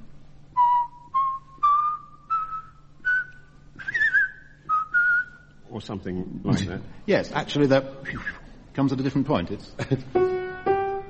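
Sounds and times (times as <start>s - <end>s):
person whistling a melody from the second movement of a symphony: 0.5s - 5.5s, 8.0s - 8.4s
speech: 5.8s - 10.2s.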